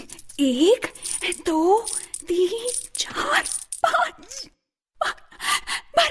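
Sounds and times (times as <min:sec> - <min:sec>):
coins clinking as they are counted: 0:00.0 - 0:03.9
speech: 0:00.4 - 0:05.2.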